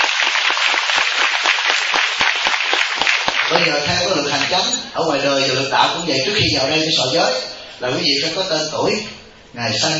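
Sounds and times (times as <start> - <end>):
audience applauding: 0.0 - 4.6
speech: 4.5 - 9.9.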